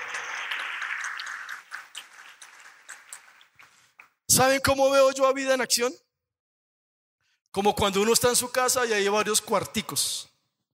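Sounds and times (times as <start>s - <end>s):
crowd applauding worship leaders: 0.0s - 4.2s
speech: 4.4s - 6.1s, 7.6s - 10.3s.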